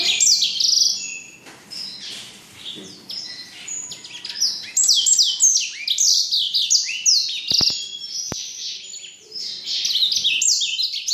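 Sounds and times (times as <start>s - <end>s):
black-throated canary singing a fast rambling warble: 0.0s - 11.1s
sharp clicks: 7.5s - 8.4s.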